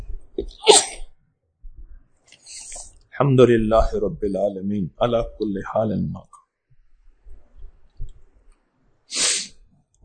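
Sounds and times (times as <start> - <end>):
person sneezing: 0.4 - 1.0, 9.1 - 9.5
speech: 0.4 - 1.0, 3.2 - 6.4.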